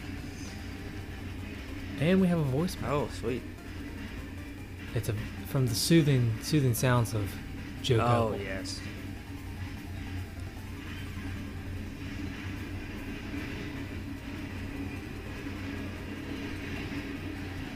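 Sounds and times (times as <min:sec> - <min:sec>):
train passing near a house: 0:00.0 - 0:17.7
speech: 0:02.0 - 0:03.6, 0:04.9 - 0:08.9.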